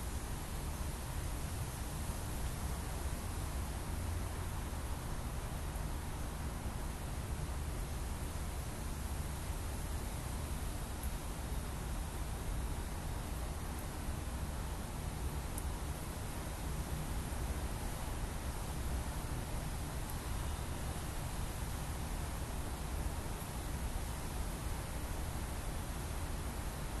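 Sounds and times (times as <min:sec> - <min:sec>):
breeze rushing through tree crowns: 0:00.0 - 0:26.9.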